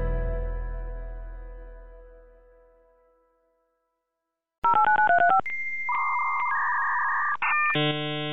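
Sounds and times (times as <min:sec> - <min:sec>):
1995 dial-up modem connecting to the internet: 0:04.6 - 0:08.3.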